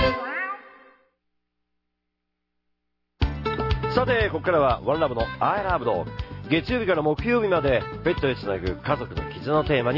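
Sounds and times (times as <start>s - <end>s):
kitten meowing: 0.0s - 0.9s
speech: 4.0s - 9.9s.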